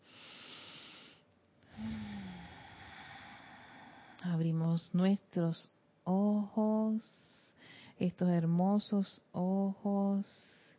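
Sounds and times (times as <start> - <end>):
deep breath: 0.0 - 4.2, 7.5 - 8.0
faint low voiced hum on exhale: 1.7 - 4.7
speech: 4.2 - 7.3, 8.0 - 10.6.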